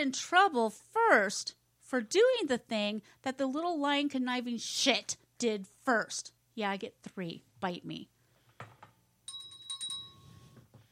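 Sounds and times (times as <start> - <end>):
speech: 0.0 - 8.1
small metallic bell ringing: 9.2 - 10.6.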